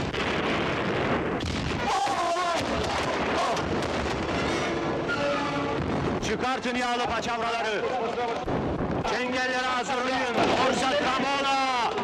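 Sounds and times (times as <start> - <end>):
cannon fire aboard a sailing warship in battle: 0.0 - 7.2, 10.2 - 12.0
speech: 6.4 - 11.6.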